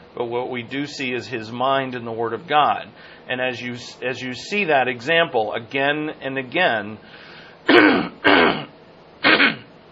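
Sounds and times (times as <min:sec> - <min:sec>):
speech: 0:00.2 - 0:08.6
throat-clearing coughs from a speaker during a Bible talk: 0:07.7 - 0:09.7.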